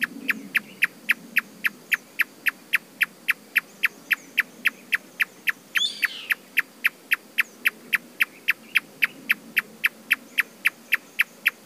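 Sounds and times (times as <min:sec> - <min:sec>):
Marsh tapaculo clicking calls: 0:00.3 - 0:11.6
brief higher bird call: 0:05.8 - 0:06.4.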